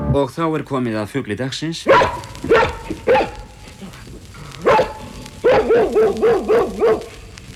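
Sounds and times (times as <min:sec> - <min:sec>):
speech: 0:00.1 - 0:03.2
dog barking: 0:01.9 - 0:07.4.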